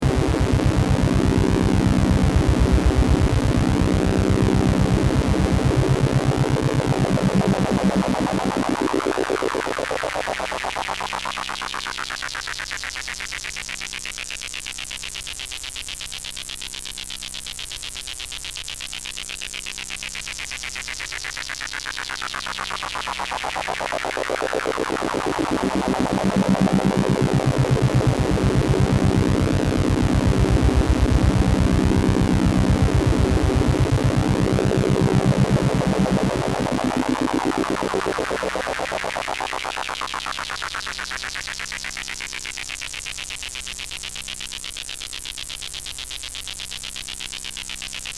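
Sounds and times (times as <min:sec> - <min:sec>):
synthesizer tone through state variable VCF with ADSR and LFO: 0:00.0 - 0:11.1, 0:22.5 - 0:40.4.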